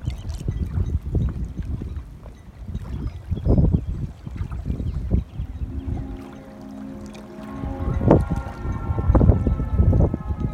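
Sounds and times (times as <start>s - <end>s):
churning water near the dock: 0.0s - 10.5s
ferry horn blast departing dock: 5.4s - 10.5s.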